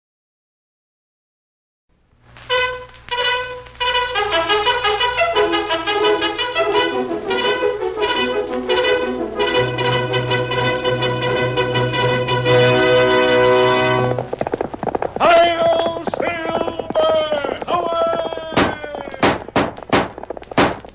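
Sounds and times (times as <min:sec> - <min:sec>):
brassy musical fanfare: 0:02.5 - 0:14.3
horse galloping hoofbeats: 0:02.5 - 0:20.9
person calling out: 0:15.2 - 0:19.4.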